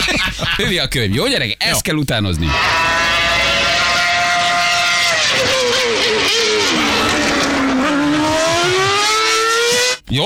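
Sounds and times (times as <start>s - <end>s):
speech: 0.6s - 2.8s
Formula 1 race car engine screaming through gear changes: 2.3s - 10.1s.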